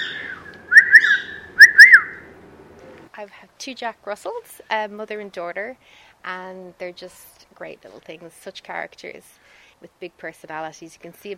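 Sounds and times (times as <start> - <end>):
pet bird wolf whistling: 0.0 - 2.2
speech: 3.2 - 11.3.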